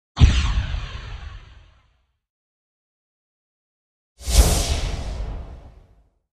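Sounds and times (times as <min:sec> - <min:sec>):
energy shot explosion: 0:04.2 - 0:06.0.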